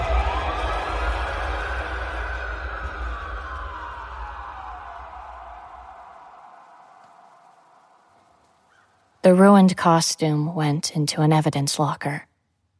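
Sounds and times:
low rumble: 0.0 - 8.6
siren wailing: 0.0 - 10.7
speech: 9.2 - 12.3.

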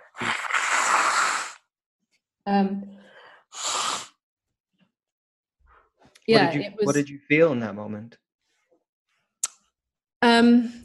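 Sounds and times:
person blowing nose: 0.0 - 1.7, 3.5 - 4.2
speech: 2.4 - 3.0, 6.3 - 8.2, 10.4 - 10.8.

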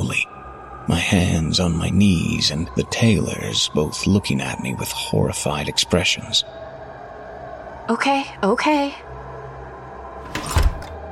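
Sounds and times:
speech: 1.1 - 6.7, 7.9 - 9.2
door slamming shut: 10.2 - 11.0.

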